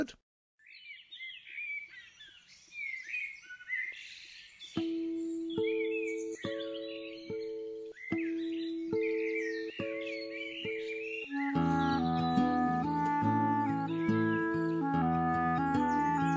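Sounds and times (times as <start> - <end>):
speech: 0.0 - 0.2
birdsong: 0.6 - 16.3
sustained musical chords: 11.3 - 16.3.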